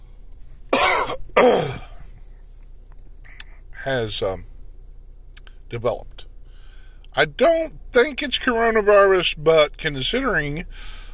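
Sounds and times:
quiet low hum: 0.0 - 11.1
sharp coughs: 0.7 - 2.0
rough throat clearing: 0.8 - 2.0
speech: 3.9 - 4.5, 5.7 - 6.3, 7.2 - 11.0.

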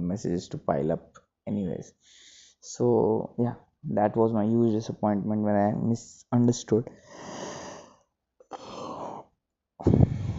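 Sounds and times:
speech: 0.1 - 7.6, 9.8 - 10.0
person yawning: 8.5 - 10.3.

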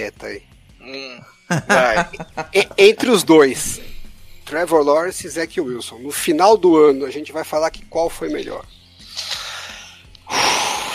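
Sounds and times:
speech: 0.0 - 3.9, 4.5 - 8.8
laughter: 1.5 - 3.2
person breathing: 9.0 - 10.9.

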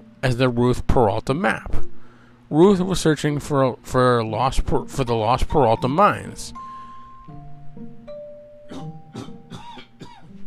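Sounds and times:
speech: 0.2 - 1.9, 2.5 - 6.7
harsh dry allergy coughs: 8.7 - 10.3.

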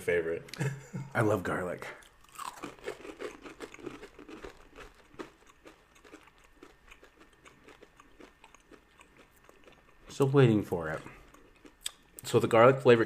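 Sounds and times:
speech: 0.0 - 2.0, 10.2 - 11.2, 12.3 - 13.0
chewing roasted garlic beef jerky: 2.0 - 12.3.

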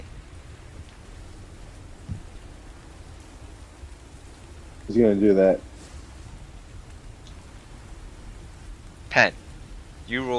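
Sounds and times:
deep constant rumble of a battering morning storm: 0.0 - 10.3
steady dense rainfall of a morning storm: 0.0 - 10.3
brief low thump: 2.0 - 2.4
speech: 4.9 - 5.7, 9.2 - 9.4, 10.1 - 10.3.

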